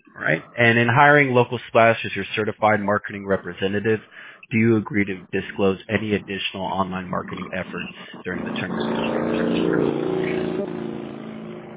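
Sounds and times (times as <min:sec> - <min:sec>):
speech: 0:00.2 - 0:10.4
motorcycle driving back and forth outside: 0:07.2 - 0:11.7.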